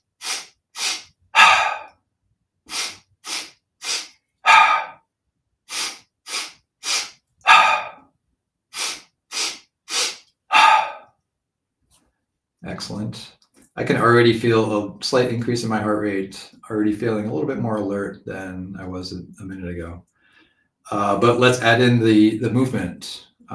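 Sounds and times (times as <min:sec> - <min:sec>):
audible exhale through the mouth: 0:00.0 - 0:01.9, 0:02.7 - 0:05.0, 0:05.7 - 0:08.0, 0:08.7 - 0:11.0
short sharp breaths in a deep breathing exercise: 0:00.0 - 0:02.0, 0:02.7 - 0:05.0, 0:05.7 - 0:08.0, 0:08.7 - 0:11.1, 0:20.1 - 0:20.8
speech: 0:12.6 - 0:20.1, 0:20.9 - 0:23.5.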